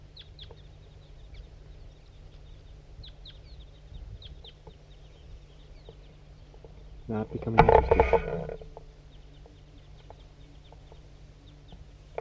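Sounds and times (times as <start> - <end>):
big flock of crossbills flying over giving short high chirping flight calls: 0.0 - 12.1
speech: 7.1 - 8.7.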